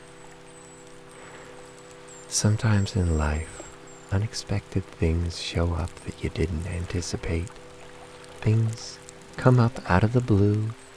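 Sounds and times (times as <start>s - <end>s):
faint low hum: 0.0s - 10.9s
falling rain: 0.0s - 10.9s
thin high tone: 0.0s - 10.9s
speech: 2.3s - 7.6s, 8.4s - 10.8s.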